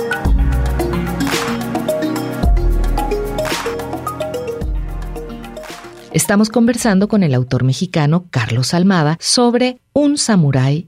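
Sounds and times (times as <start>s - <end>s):
soft instrumental music with steady bass and sustained melodic notes: 0.0s - 7.0s
speech: 6.2s - 10.8s.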